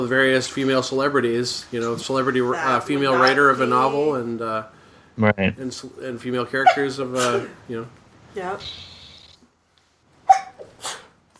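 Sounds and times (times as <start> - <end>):
speech: 0.0 - 8.9
sneeze: 6.7 - 7.6, 10.3 - 11.2.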